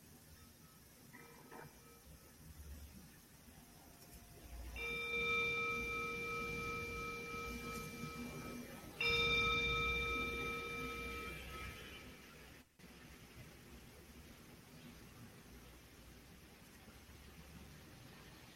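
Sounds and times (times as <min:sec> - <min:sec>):
meditation bell struck and ringing: 0:04.8 - 0:12.2.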